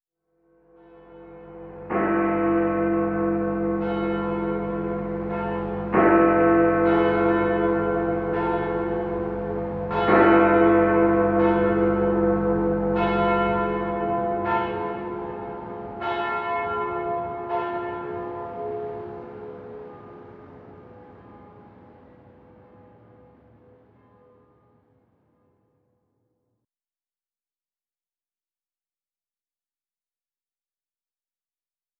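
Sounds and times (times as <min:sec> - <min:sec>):
church bells: 0:00.5 - 0:25.6.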